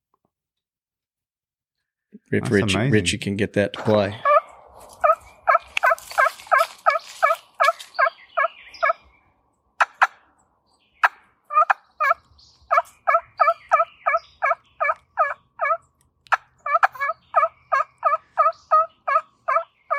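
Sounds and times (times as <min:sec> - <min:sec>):
speech: 0:02.2 - 0:04.3
trumpet-style turkey call yelps: 0:04.2 - 0:09.0, 0:09.8 - 0:10.3, 0:11.0 - 0:19.9.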